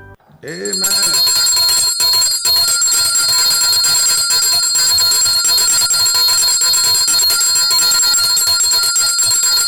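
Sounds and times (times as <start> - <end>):
speech: 0.4 - 1.0
bright metallic bell ringing: 0.5 - 9.6.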